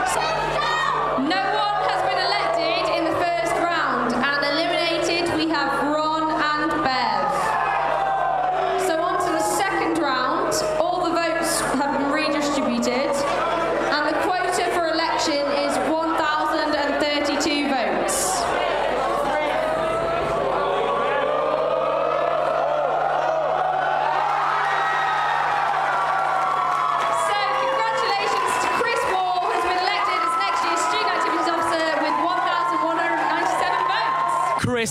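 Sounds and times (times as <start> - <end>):
group of friends screaming, whooping and cheering at a student election result: 0.0 - 34.8
scattered claps: 25.1 - 33.9.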